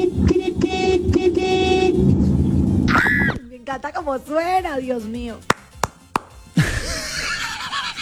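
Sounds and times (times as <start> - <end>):
people talking: 0.0 - 2.3, 3.3 - 5.5
car horn honking: 0.0 - 3.3
laughter: 6.6 - 8.0.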